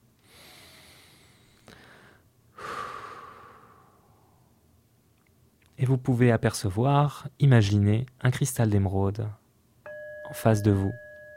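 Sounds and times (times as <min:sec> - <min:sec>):
slow deep breathing during a guided relaxation exercise: 0:00.2 - 0:04.5
speech: 0:05.8 - 0:09.4, 0:10.3 - 0:11.0.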